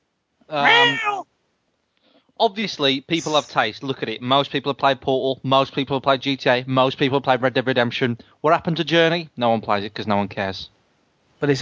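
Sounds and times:
single drawn-out cat meow: 0.5 - 1.2
speech: 0.5 - 1.3, 2.4 - 10.8, 11.4 - 11.6.

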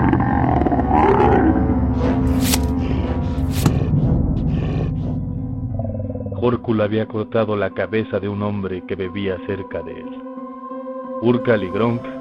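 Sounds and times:
deep rumbling animal growl: 0.0 - 6.6
speech: 6.5 - 10.4, 11.2 - 12.1.

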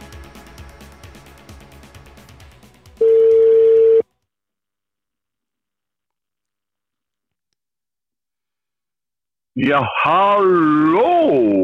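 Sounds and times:
telephone dialing tones: 3.0 - 4.0
speech: 9.6 - 11.6.

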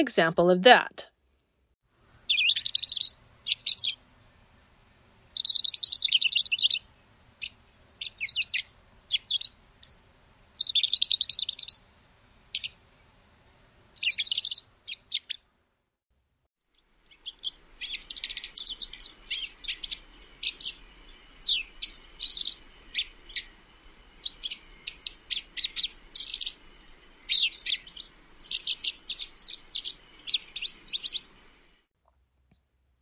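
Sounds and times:
speech: 0.0 - 1.1
dark-eyed junco singing soft warbling song: 2.2 - 4.3, 5.4 - 11.9, 12.5 - 12.8, 14.0 - 15.5, 16.7 - 31.9.

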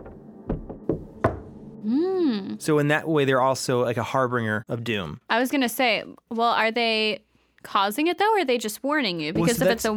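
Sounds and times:
dull hollow knocks on a mine wall: 0.0 - 1.5
speech: 1.8 - 9.9.

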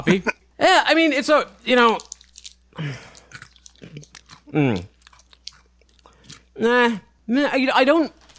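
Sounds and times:
speech: 0.0 - 2.1, 2.8 - 3.1, 4.5 - 4.9, 6.6 - 8.2
Cheddar Jalapeno Crunchy Cheetos snacks being chewed: 1.6 - 6.6
vocal noises: 3.8 - 5.0.

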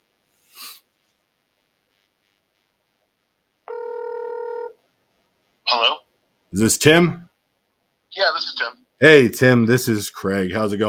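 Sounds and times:
ring tone on an outgoing phone call: 3.7 - 4.8
speech: 6.5 - 7.2, 8.1 - 10.8.

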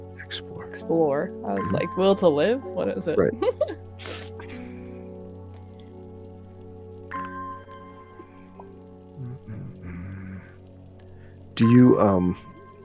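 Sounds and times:
speech: 0.2 - 4.2, 11.6 - 12.5
low humming tone: 1.2 - 12.8
water splashing and dripping from watering plants: 1.4 - 12.8
squishy water spray from watering plants: 4.0 - 4.5.

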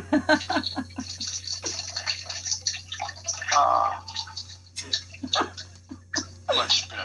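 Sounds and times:
laughter: 0.0 - 1.4
people talking: 0.0 - 2.6, 3.3 - 7.0
steady low electrical hum: 0.0 - 7.0
water poured into a glass: 0.6 - 5.8.

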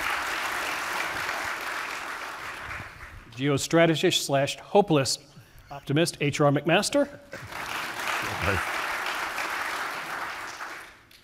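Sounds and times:
live audience crowd applauding: 0.0 - 3.3, 7.3 - 11.2
speech: 3.4 - 7.6, 8.4 - 8.7
low voice: 8.2 - 8.6.

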